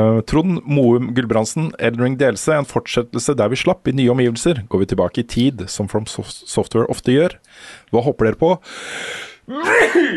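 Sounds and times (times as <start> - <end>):
speech: 0.0 - 10.1
person sneezing: 9.5 - 10.1.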